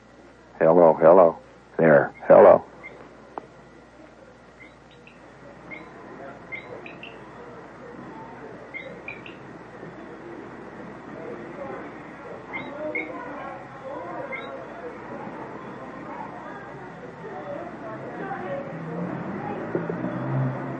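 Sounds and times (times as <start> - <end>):
faint murmur: 0.0 - 20.7
speech: 0.6 - 2.7
tropical night bird calling at twilight: 2.1 - 3.0, 4.6 - 7.5, 8.7 - 9.5, 12.5 - 13.2, 14.2 - 14.7.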